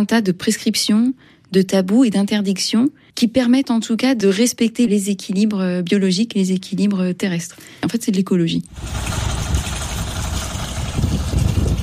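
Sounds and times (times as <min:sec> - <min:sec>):
speech: 0:00.0 - 0:09.7
boat engine droning on the water: 0:08.7 - 0:11.8.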